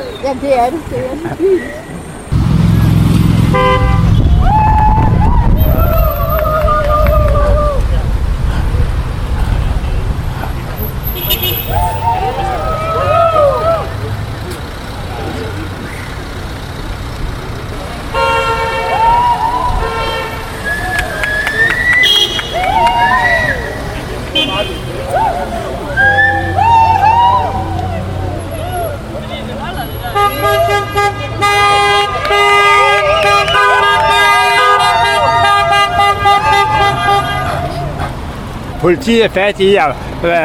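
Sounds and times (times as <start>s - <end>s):
murmur of crowd voices: 0.0s - 19.9s, 20.5s - 39.0s
idling car engines rumbling in a traffic jam: 0.0s - 40.4s
speech: 0.2s - 2.0s, 38.8s - 40.4s
car horns honking in a traffic jam beside protesters: 2.3s - 4.6s, 9.6s - 12.8s, 18.0s - 20.7s, 22.0s - 23.0s, 23.8s - 25.1s, 29.8s - 37.9s.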